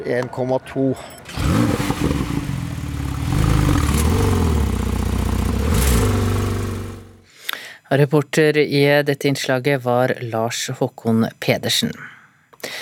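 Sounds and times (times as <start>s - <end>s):
speech: 0.0s - 2.5s, 7.9s - 12.8s
Porsche car engine revving: 1.3s - 7.2s.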